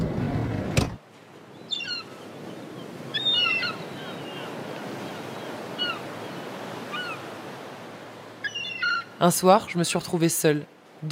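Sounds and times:
waves crashing against a cliff: 0.0s - 8.4s
breezy wind: 0.0s - 11.0s
birds chirping: 1.5s - 10.1s
speech: 9.2s - 11.0s.

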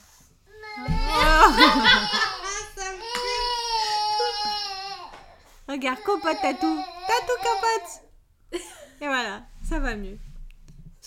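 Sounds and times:
baby boy crying and fussing: 0.5s - 8.1s
laughter: 1.0s - 3.4s
speech: 5.8s - 10.3s.

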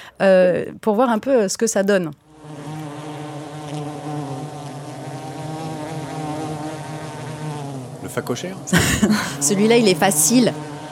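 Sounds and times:
speech: 0.2s - 2.2s, 8.2s - 10.7s
amplified bee buzzing: 2.2s - 10.8s
laughter: 8.5s - 9.6s.

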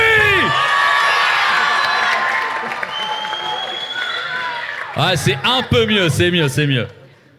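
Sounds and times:
loud crowd cheering with shouts and whoops: 0.0s - 5.8s
loud crowd applauding: 0.6s - 5.9s
speech: 5.0s - 7.0s.

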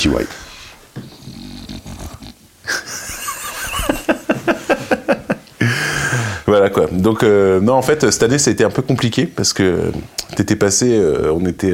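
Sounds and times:
speech: 0.0s - 0.4s, 6.8s - 11.7s
dog snuffling and growling: 0.3s - 2.5s
laughter: 2.7s - 6.4s.

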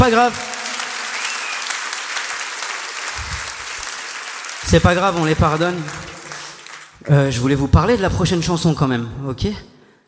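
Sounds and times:
speech: 0.0s - 0.5s, 4.6s - 6.1s, 7.0s - 9.7s
concert audience applauding and cheering: 0.0s - 7.1s
whistle: 1.1s - 1.8s.

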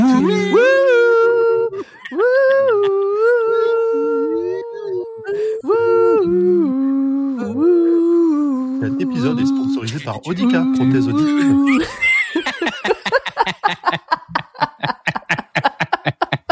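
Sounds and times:
laughter: 0.0s - 4.5s, 9.2s - 16.5s
voices humming a television series theme tune in unison: 0.0s - 14.0s
speech: 10.1s - 12.0s.

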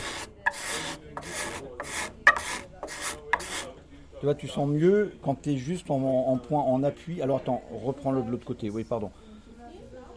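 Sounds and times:
hand tool pressed with the thumbs scraping wood into shavings: 0.0s - 3.7s
speech: 4.2s - 9.2s.

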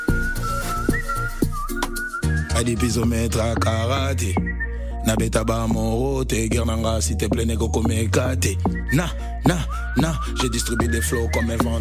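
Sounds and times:
person whistling a high wavering tune: 0.0s - 6.0s, 8.0s - 11.8s
pounding beat with deep bass and sharp percussive hits: 0.0s - 11.8s
speech: 2.6s - 11.8s.

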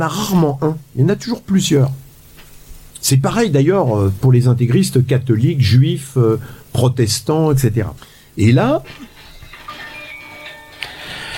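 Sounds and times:
speech: 0.0s - 2.0s, 3.0s - 9.1s
mobile phone ringing with thin electronic melody: 9.0s - 11.3s.

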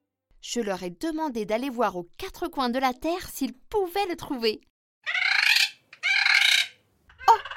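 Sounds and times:
speech: 0.4s - 4.7s
bird calling on returning from a long journey: 5.0s - 7.5s.

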